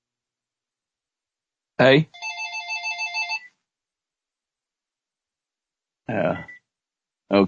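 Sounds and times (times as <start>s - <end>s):
short voice sound: 1.8s - 2.0s, 6.1s - 6.5s
speech: 1.8s - 2.2s
telephone ringing with a rapid warbling electronic trill: 2.1s - 3.5s.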